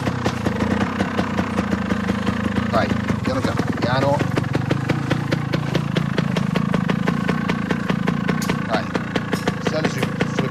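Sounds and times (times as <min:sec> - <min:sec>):
motorbike engine idling, put into first gear: 0:00.0 - 0:10.5
speech: 0:02.8 - 0:04.2.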